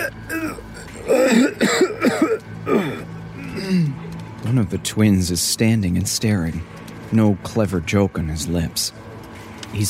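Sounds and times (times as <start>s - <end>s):
person performing strangled choked coughs: 0.0s - 3.9s
speech: 4.6s - 9.1s.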